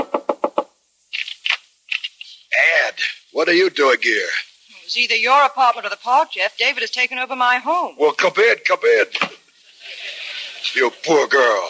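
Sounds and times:
knocking on an apartment door: 0.0 - 0.7
speech: 3.4 - 9.4, 10.8 - 11.6
laughter: 9.6 - 11.4.

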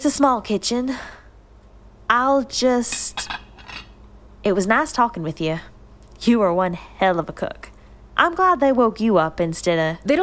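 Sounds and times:
speech: 0.0 - 1.2, 2.1 - 3.4, 4.4 - 10.2
dishes and cutlery clinking and rattling being loaded into a dishwasher: 2.9 - 4.0.

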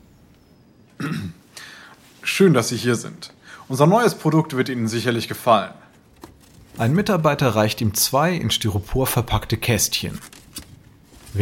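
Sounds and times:
speech: 1.0 - 1.4, 2.4 - 5.8, 6.8 - 10.4
man clearing his throat: 1.0 - 1.5.

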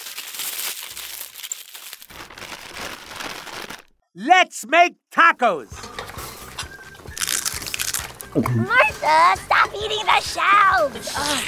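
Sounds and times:
paper wrapping crumpled into a brown paper bag: 0.0 - 3.8, 7.2 - 8.3
speech: 4.2 - 5.8, 8.4 - 11.4.

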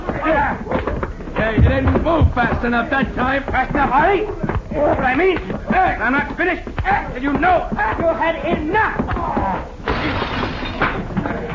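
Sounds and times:
speech: 0.2 - 0.8, 1.4 - 9.7
tinkling glass shards: 9.9 - 10.8
plate glass mirror shattering: 9.9 - 11.0.

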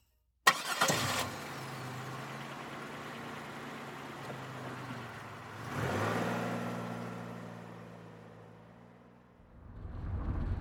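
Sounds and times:
Nova car engine starting, idling and revving: 0.5 - 9.0
Nova car driving off: 0.5 - 10.5.

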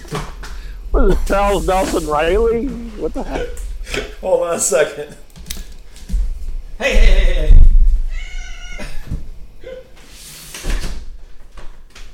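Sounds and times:
speech: 1.0 - 5.2, 6.8 - 7.6
cat meowing loudly and wailing: 8.1 - 9.0.

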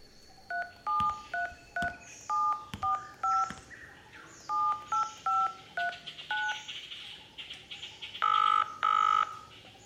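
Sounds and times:
cell phone keypad dialing tones: 0.5 - 3.6, 4.5 - 6.6, 8.2 - 9.4.

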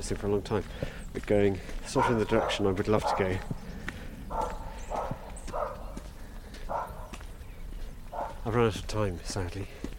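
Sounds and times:
speech: 0.0 - 3.6, 8.4 - 9.9
dog barking: 1.9 - 3.6, 4.2 - 7.2, 8.1 - 8.5.

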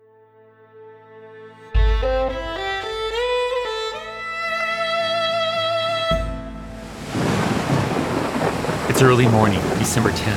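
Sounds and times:
swelling musical passage: 0.4 - 7.5
rain in a violent storm off the Massachusetts coast: 6.6 - 10.3
rumbling thunder in a violent storm off the Massachusetts coast: 6.7 - 10.3
speech: 9.0 - 10.3.

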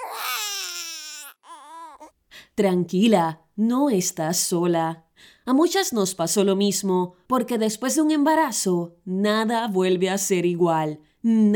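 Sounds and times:
baby wailing loudly with a gasping catch: 0.0 - 2.2
speech: 2.6 - 11.5.

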